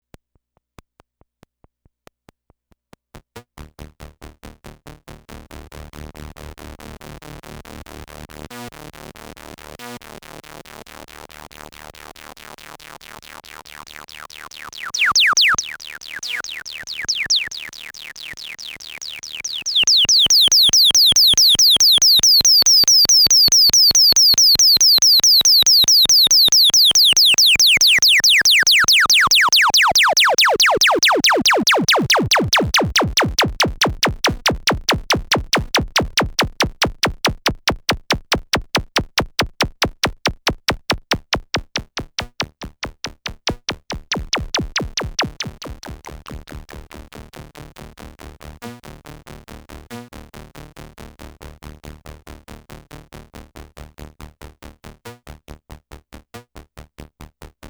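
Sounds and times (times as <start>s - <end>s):
high-pass filtered bass: 14.8s - 46.7s.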